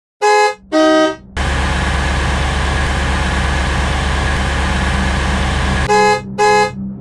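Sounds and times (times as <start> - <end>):
car horn honking: 0.2 - 1.5, 5.7 - 6.8
steady car engine rumble: 0.8 - 6.7.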